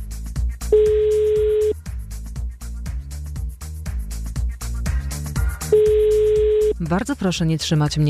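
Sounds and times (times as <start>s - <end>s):
rhythmic music: 0.0s - 8.0s
telephone ringback tone while calling: 0.7s - 1.8s, 5.7s - 6.7s
speech: 6.9s - 8.0s.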